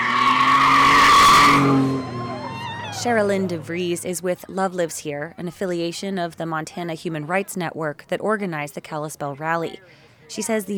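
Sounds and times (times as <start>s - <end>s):
pickup truck tires squealing during a burnout on a street: 0.0s - 3.7s
pickup truck engine roaring: 0.0s - 4.1s
speech: 3.0s - 10.7s.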